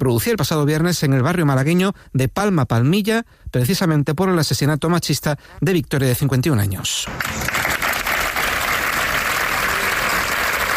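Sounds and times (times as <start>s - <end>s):
speech: 0.0s - 7.7s
applause from workers of a social centre in Málaga Spain: 7.1s - 10.7s.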